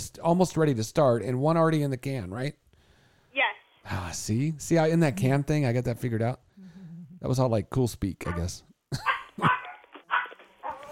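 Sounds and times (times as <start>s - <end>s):
speech: 0.1s - 2.6s, 3.4s - 6.4s, 7.2s - 9.6s
dog barking: 8.3s - 10.9s.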